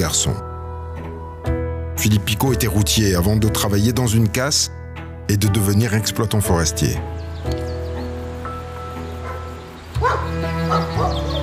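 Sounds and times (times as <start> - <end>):
speech: 0.0 - 0.5, 2.0 - 7.6
hunting dogs barking and yelping: 9.1 - 11.4.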